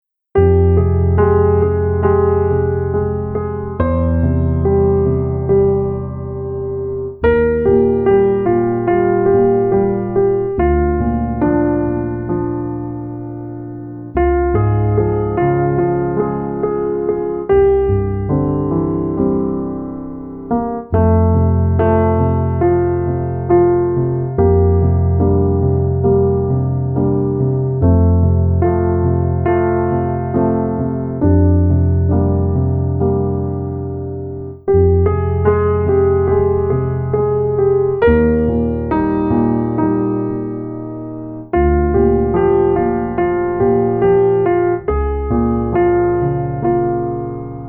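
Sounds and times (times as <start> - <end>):
piano piece: 0.0 - 47.6.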